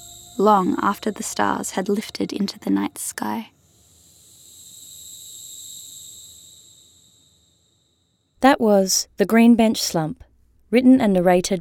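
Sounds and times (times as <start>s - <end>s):
grasshoppers chirring at night: 0.0s - 7.8s
speech: 0.4s - 3.6s, 8.4s - 11.6s.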